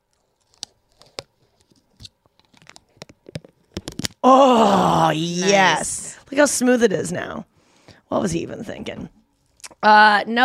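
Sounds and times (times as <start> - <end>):
protective plastic film peeled off a button: 0.1 - 4.2
speech: 4.2 - 7.5, 8.1 - 9.2, 9.8 - 10.4.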